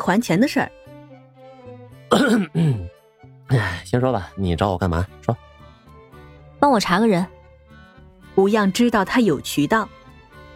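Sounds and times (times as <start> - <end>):
speech: 0.0 - 0.8, 2.1 - 2.9, 3.5 - 5.5, 6.6 - 7.4, 8.4 - 10.0
man's feigned throat clearing: 2.1 - 2.9.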